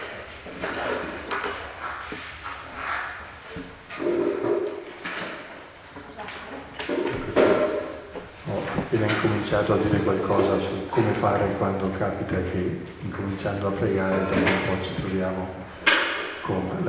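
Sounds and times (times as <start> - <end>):
chair scraping and thumping across the floor as it is dragged: 0.0 - 6.0, 6.7 - 11.2
speech: 8.9 - 15.6, 16.5 - 16.8.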